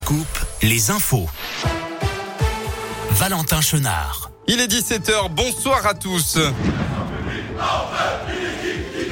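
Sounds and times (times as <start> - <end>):
speech: 0.1 - 1.8, 3.2 - 7.0, 7.6 - 8.4
large crowd of football supporters chanting in protest: 6.6 - 9.0.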